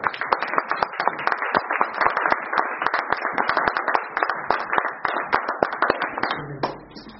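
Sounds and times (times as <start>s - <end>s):
crowd applauding: 0.0s - 7.1s.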